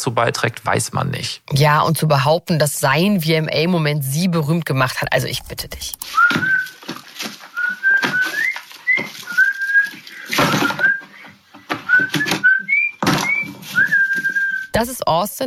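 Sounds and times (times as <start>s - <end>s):
speech: 0.0s - 6.8s, 14.8s - 15.4s
person whistling a tune: 6.1s - 6.8s, 7.6s - 14.7s
loud thumps: 10.3s - 14.1s.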